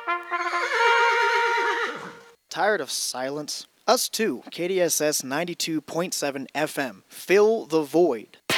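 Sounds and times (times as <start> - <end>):
horse neighing: 0.2 - 2.4
speech: 2.6 - 8.4.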